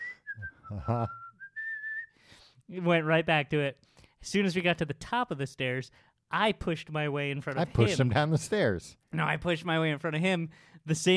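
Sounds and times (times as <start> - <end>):
person whistling a casual wavering tune: 0.0 - 2.2
speech: 0.7 - 1.2, 2.7 - 11.1.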